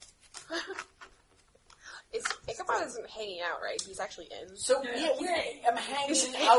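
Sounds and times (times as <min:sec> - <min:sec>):
shuffling a deck of playing cards: 0:00.0 - 0:02.5
speech: 0:02.7 - 0:06.5.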